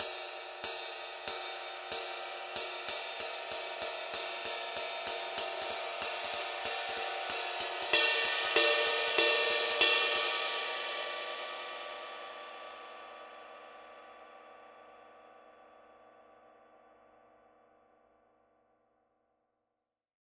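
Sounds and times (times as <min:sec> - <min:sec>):
dark crisp ride cymbal: 0:00.0 - 0:12.3.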